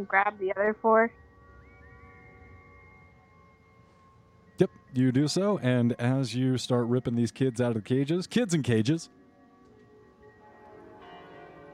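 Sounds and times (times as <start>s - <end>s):
speech: 0.0s - 1.3s, 4.6s - 9.2s
tower bells ringing: 0.0s - 11.7s.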